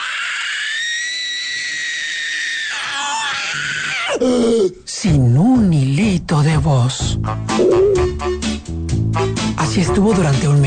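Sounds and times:
human voice imitating a vulture screaming: 0:00.0 - 0:04.7
speech: 0:04.1 - 0:08.9, 0:09.6 - 0:10.6.

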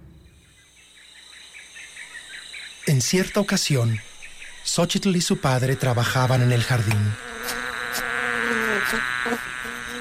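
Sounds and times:
speech: 0:03.0 - 0:08.0, 0:08.9 - 0:09.5
bees buzzing around flowers in a garden: 0:05.4 - 0:10.0.

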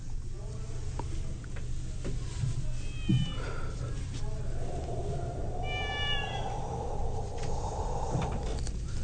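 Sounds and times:
steady low hum: 0:00.0 - 0:09.0
cat meowing: 0:02.8 - 0:03.4, 0:05.6 - 0:06.9.

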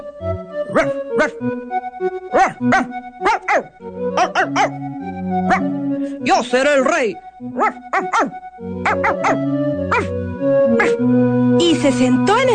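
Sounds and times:
dog barking: 0:00.7 - 0:01.4, 0:02.3 - 0:04.8, 0:05.4 - 0:05.8, 0:07.5 - 0:11.0
speech: 0:00.7 - 0:03.7, 0:06.4 - 0:12.5.

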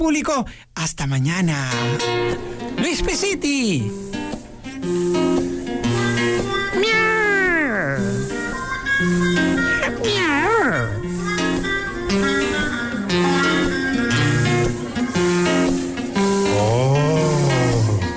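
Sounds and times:
speech: 0:00.0 - 0:04.2
steady musical accompaniment: 0:04.3 - 0:18.1
black cat meowing: 0:06.8 - 0:08.0.

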